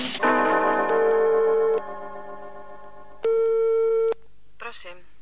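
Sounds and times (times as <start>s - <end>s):
telephone ringing tone on the line: 0.2s - 2.0s, 3.2s - 4.1s.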